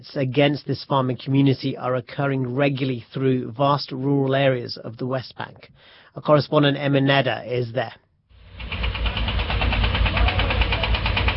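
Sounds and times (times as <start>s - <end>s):
speech: 0.0s - 8.0s
diggers, cranes and lorries engine rumble in the hills: 8.4s - 11.3s.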